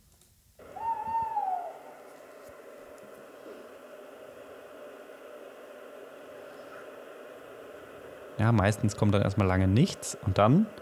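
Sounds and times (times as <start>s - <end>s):
male tawny owl hooting: 0.6s - 8.3s
speech: 8.4s - 10.8s.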